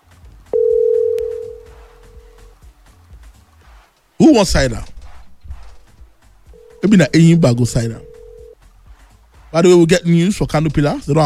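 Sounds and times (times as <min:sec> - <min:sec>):
telephone dial tone while placing a call: 0:00.6 - 0:01.8, 0:08.0 - 0:08.6
speech: 0:04.2 - 0:04.9, 0:06.9 - 0:08.1, 0:09.5 - 0:11.2.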